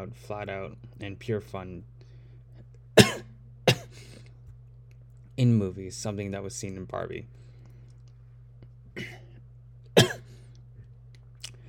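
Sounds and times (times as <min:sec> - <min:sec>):
speech: 0:00.0 - 0:02.0, 0:05.4 - 0:07.4
steady low hum: 0:00.0 - 0:11.6
person coughing: 0:03.0 - 0:04.1, 0:09.0 - 0:09.4, 0:10.0 - 0:10.3.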